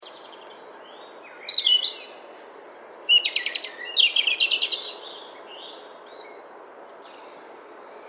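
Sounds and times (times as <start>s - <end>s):
faint low background hiss: 0.0s - 8.0s
European robin singing sweet high whistles and rattling trills: 0.9s - 5.0s.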